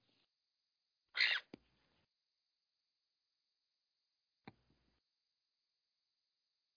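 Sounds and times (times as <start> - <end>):
pet bird squawking: 1.1 - 1.5.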